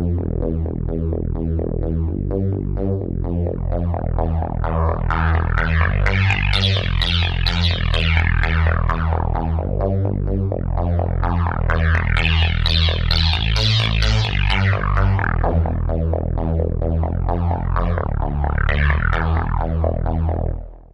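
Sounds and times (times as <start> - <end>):
trance dance music: 0.2 - 20.7.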